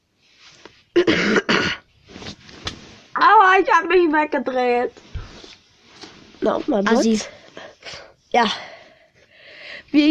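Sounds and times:
person coughing: 1.0s - 1.9s
speech: 3.6s - 5.1s, 6.4s - 7.4s, 8.3s - 8.7s.

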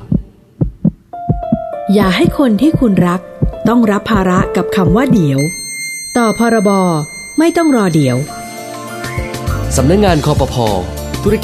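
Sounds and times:
racing heartbeat: 0.0s - 5.2s
speech: 1.9s - 8.4s, 9.7s - 11.4s
steady electronic tone: 3.4s - 10.4s.

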